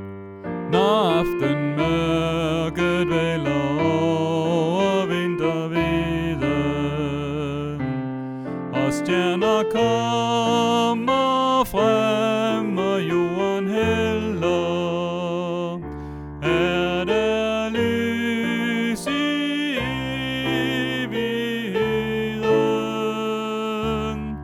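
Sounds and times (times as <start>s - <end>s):
soprano and alto voices: 0.5s - 24.4s.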